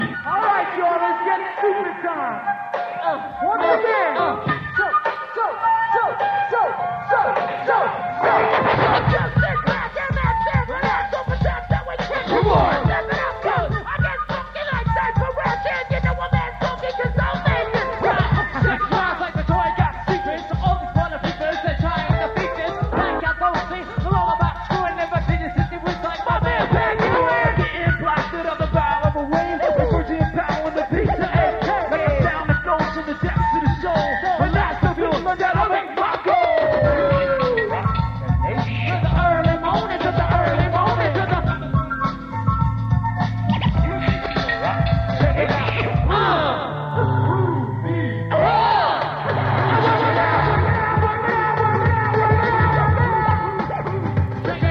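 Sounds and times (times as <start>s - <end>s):
flute loop in San Francisco CA: 0.0s - 54.6s
laughter: 18.0s - 19.5s, 48.3s - 52.2s.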